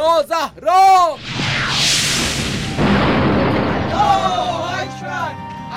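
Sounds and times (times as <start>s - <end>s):
speech: 0.1s - 1.8s
rocket-propelled grenade whooshing: 1.1s - 5.1s
rocket-propelled grenade loud rumbling explosion: 1.2s - 4.8s.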